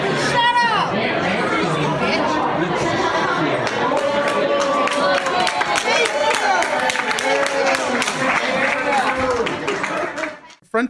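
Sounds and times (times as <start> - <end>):
crowd cheering at an airport: 0.0 - 10.6
people clapping at an airport: 3.5 - 10.6
people whooping at an airport: 4.0 - 10.3.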